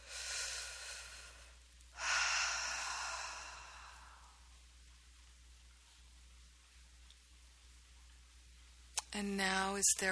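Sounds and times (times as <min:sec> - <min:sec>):
deep breath during a guided relaxation exercise: 0:00.0 - 0:04.5
speech: 0:09.2 - 0:10.1.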